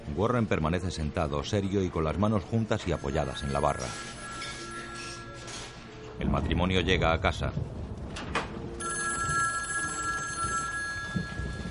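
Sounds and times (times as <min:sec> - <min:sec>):
speech: 0:00.2 - 0:04.2, 0:06.2 - 0:08.3
telephone ringing in a home: 0:02.8 - 0:05.5, 0:08.8 - 0:11.6.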